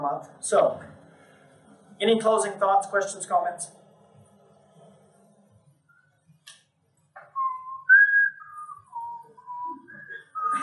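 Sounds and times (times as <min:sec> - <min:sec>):
speech: 0:00.0 - 0:01.0, 0:02.0 - 0:03.8
person whistling a short wavering tune: 0:07.3 - 0:10.6.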